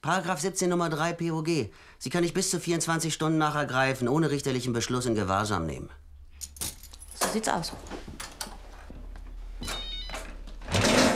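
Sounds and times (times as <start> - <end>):
speech: 0.0 - 6.0, 7.3 - 8.0
clattering and rustling: 6.4 - 11.1
mobile phone ringing: 9.6 - 10.3.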